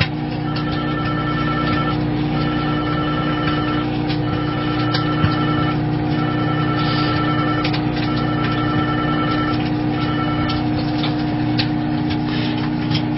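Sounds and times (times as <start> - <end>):
steady low appliance hum: 0.0 - 13.1
mobile phone ringing with a repeating electronic ringtone: 0.4 - 10.8.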